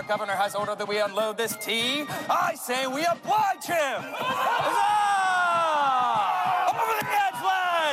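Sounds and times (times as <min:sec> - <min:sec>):
speech: 0:00.1 - 0:05.0
large crowd shouting at protest reenactment: 0:03.0 - 0:07.9.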